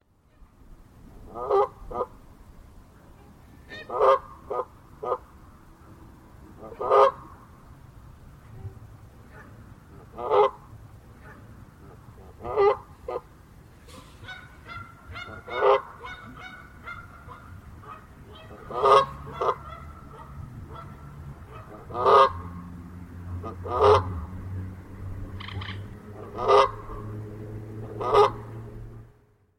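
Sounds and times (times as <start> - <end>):
Canada goose: 1.2 - 2.2, 3.6 - 5.2, 6.6 - 7.3, 8.5 - 10.6, 12.2 - 13.3, 14.2 - 22.5, 23.4 - 24.1, 25.4 - 27.0, 27.9 - 28.4.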